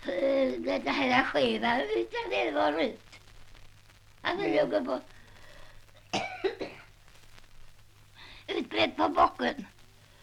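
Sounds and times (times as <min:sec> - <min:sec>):
low steady hum: 0:00.0 - 0:10.2
speech: 0:00.7 - 0:03.2, 0:04.2 - 0:05.2, 0:08.5 - 0:09.7
breathing: 0:05.1 - 0:06.0, 0:08.2 - 0:08.5, 0:10.0 - 0:10.2
person coughing: 0:06.1 - 0:06.9.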